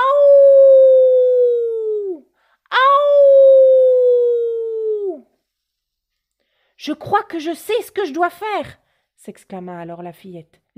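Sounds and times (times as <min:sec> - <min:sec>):
wolf howling at night: 0:00.0 - 0:05.2
speech: 0:06.8 - 0:10.7.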